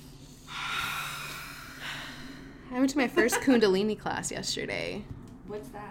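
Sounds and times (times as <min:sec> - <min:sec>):
person taking long deep breaths: 0:00.0 - 0:02.8
speech: 0:02.7 - 0:05.8.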